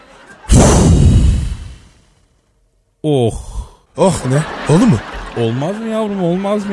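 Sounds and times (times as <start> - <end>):
laughter: 0.0 - 0.6, 4.0 - 6.7
gust of breath blown straight into the microphone: 0.5 - 2.0
speech: 3.0 - 6.7.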